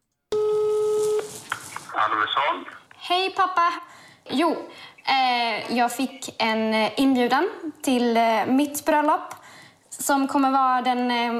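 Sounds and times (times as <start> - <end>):
telephone line tone: 0.3 - 1.4
faint noise: 0.3 - 11.3
speech: 2.0 - 9.4, 10.0 - 11.3.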